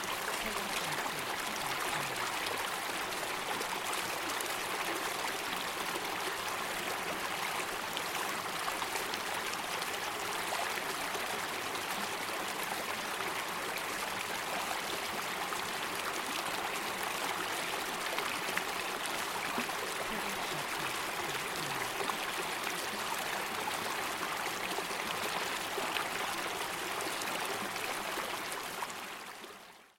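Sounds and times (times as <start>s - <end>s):
medium stream: 0.0s - 29.9s.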